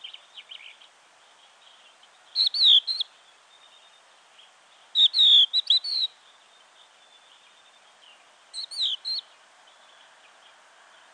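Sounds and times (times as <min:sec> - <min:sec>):
faint high chirps: 0:00.0 - 0:10.0
crested lark whistled call: 0:02.3 - 0:04.0, 0:04.9 - 0:09.3.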